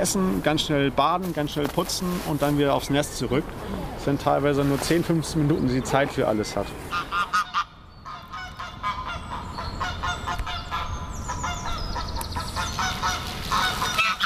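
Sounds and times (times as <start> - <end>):
speech: 0.0 - 7.3
gander honking with loud harsh calls: 6.9 - 14.2.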